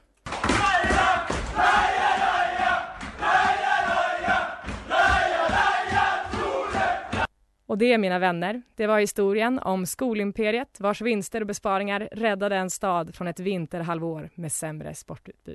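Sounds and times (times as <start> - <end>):
large crowd cheering and roaring: 0.3 - 7.3
speech: 7.8 - 15.5.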